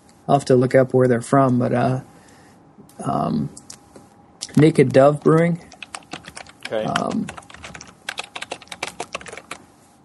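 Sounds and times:
speech: 0.3s - 2.1s, 3.0s - 3.6s, 4.6s - 5.7s, 6.7s - 7.4s
typing on a computer keyboard: 5.2s - 9.6s.

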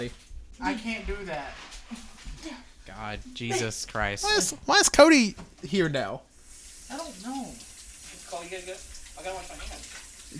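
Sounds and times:
speech: 0.0s - 6.3s, 6.9s - 7.7s, 8.3s - 10.3s
kitchen tap water running: 5.1s - 10.3s.

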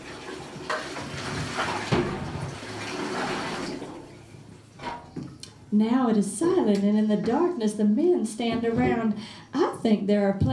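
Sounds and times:
brief splashing surges of water: 0.0s - 4.3s
speech: 5.7s - 10.5s.

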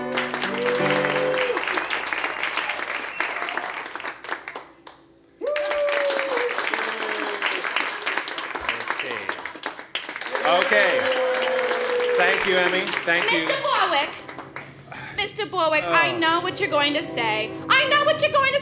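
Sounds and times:
crowd at a show applauding: 0.0s - 15.0s
whoops from crowd: 0.1s - 3.9s, 5.4s - 7.7s, 10.3s - 12.3s
speech: 12.4s - 14.2s, 15.3s - 18.5s.

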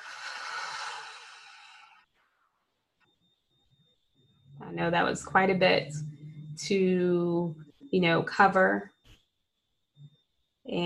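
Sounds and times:
person breathing in through the nose and out through the mouth: 0.0s - 2.1s
speech: 4.7s - 8.9s.

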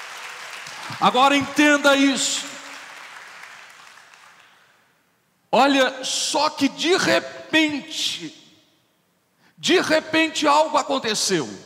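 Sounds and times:
crowd applauding to praise God: 0.0s - 4.8s
speech: 0.9s - 2.5s, 5.5s - 8.4s, 9.6s - 11.6s.

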